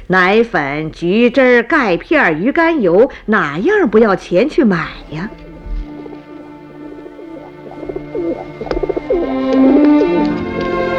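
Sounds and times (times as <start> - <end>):
speech: 0.1 - 5.4
flock of pigeons cooing: 4.8 - 10.9.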